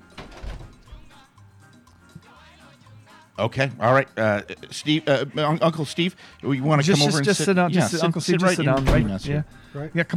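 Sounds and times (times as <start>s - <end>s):
studio door latch clunking and rattling: 0.0s - 1.2s, 8.8s - 9.6s
speech: 3.4s - 10.1s.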